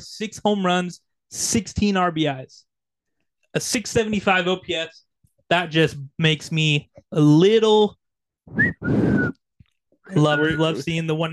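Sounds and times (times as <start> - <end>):
speech: 0.0 - 2.7, 3.6 - 9.4, 10.1 - 11.3
person whistling two notes: 8.5 - 9.5, 10.1 - 10.8.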